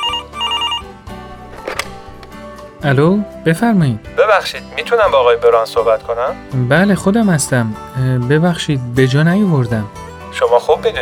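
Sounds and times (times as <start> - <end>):
telephone ringing with bright bell-like trill: 0.0 - 1.0
speech: 2.8 - 10.9.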